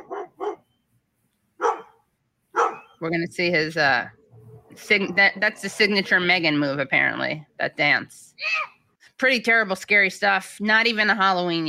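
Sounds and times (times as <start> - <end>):
dog barking at a boy in a Halloween costume: 0.0 - 0.7, 1.6 - 3.0
speech: 3.0 - 4.2, 4.8 - 11.6.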